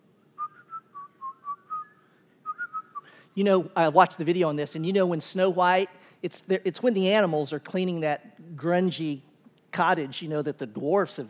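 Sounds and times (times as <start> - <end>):
short bouncy whistled tune: 0.4 - 3.2
speech: 3.4 - 11.2.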